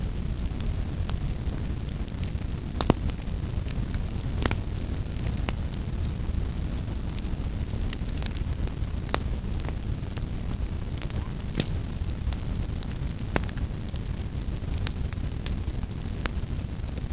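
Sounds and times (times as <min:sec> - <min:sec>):
campfire: 0:00.0 - 0:17.1.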